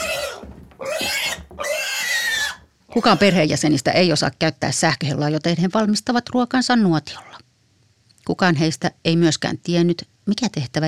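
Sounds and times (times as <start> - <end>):
pig in a bathtub grunting and squealing: 0.0 - 3.6, 7.0 - 7.4
speech: 3.0 - 7.4, 8.3 - 10.8.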